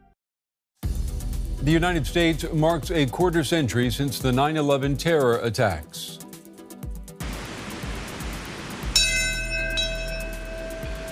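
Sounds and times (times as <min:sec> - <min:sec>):
speech: 0:01.6 - 0:06.2
outdoor hiss: 0:07.2 - 0:11.1
single memorial bell ringing: 0:08.9 - 0:11.1.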